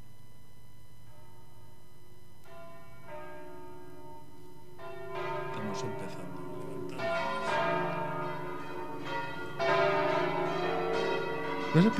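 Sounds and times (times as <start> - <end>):
heavy church bells swung up and rung by hand by bell-ringers: 2.5 - 11.9.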